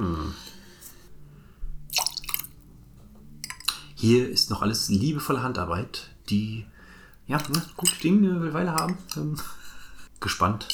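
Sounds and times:
ice clinking in a glass: 1.9 - 2.5, 3.4 - 3.9, 7.4 - 8.1, 8.8 - 9.2
whisky poured into glass over ice: 1.9 - 2.6
speech: 4.0 - 6.7, 7.3 - 9.6, 10.2 - 10.7.

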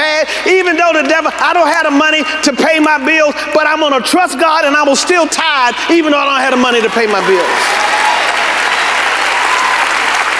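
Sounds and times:
speech: 0.4 - 8.3
large crowd applauding: 0.6 - 2.2, 6.5 - 10.3.

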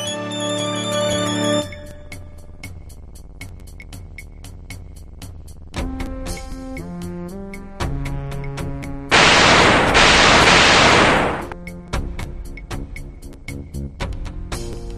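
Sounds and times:
chiptune-style retro game music: 0.0 - 2.2
noisy explosion sound effect: 9.1 - 11.6
sharp percussive hits: 9.1 - 11.6.

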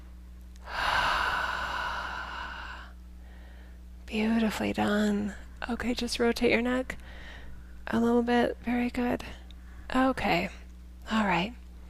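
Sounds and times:
faint low hum: 0.0 - 11.8
deep breath: 0.6 - 3.8, 7.0 - 7.6
speech: 4.1 - 7.2, 7.9 - 11.6.

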